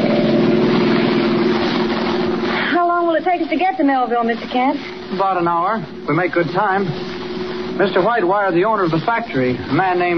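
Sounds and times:
car speeding out of a darkening city: 0:00.0 - 0:02.6
speech: 0:03.5 - 0:07.1, 0:07.8 - 0:10.1.

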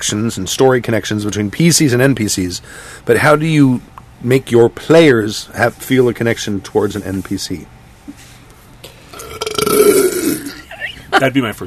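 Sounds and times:
speech: 0:00.0 - 0:08.2, 0:11.2 - 0:11.6
drawn-out burp: 0:09.1 - 0:10.6.

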